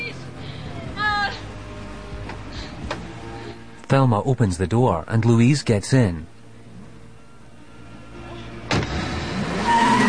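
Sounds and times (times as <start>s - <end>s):
car tires and engine rushing on a rain-swept road: 0.0s - 10.0s
speech: 3.9s - 6.4s
car skidding onto a rain-swept main road: 8.7s - 10.0s.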